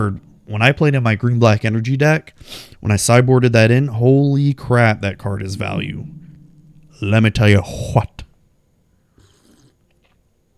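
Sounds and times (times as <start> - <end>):
speech: 0.0 - 6.2, 7.0 - 8.2
slurping sip of a drink: 9.2 - 9.8.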